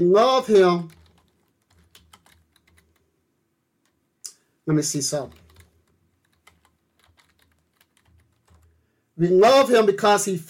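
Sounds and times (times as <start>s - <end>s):
speech: 0.0s - 1.0s, 4.7s - 5.4s, 9.2s - 10.4s
rapid irregular clicking of computer keyboard keys: 0.8s - 3.1s, 5.2s - 8.8s.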